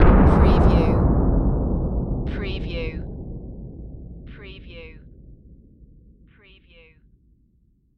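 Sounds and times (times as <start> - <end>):
dynamite explosion blast: 0.0 - 6.2.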